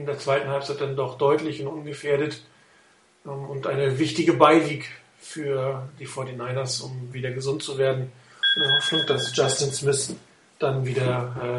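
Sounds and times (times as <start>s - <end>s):
speech: 0.0s - 2.5s, 3.2s - 11.5s
high pitched electronic phone tone: 8.4s - 9.8s.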